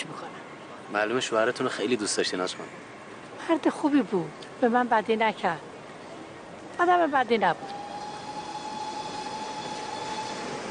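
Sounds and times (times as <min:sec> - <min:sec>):
speech: 0:00.9 - 0:05.7, 0:06.8 - 0:07.8
train moving along rails: 0:07.5 - 0:10.7
high metallic whine from train on rails: 0:07.8 - 0:10.7.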